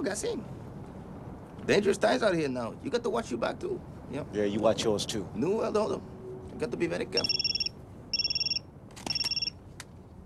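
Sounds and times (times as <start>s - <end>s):
speech: 0.0s - 0.6s, 1.6s - 7.5s
telephone ringing with rapid electronic trilling: 7.2s - 9.6s.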